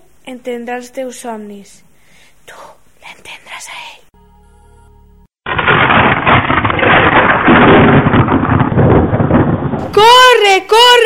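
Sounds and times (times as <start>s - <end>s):
speech: 0.3s - 1.9s
rolling thunder: 5.5s - 10.4s.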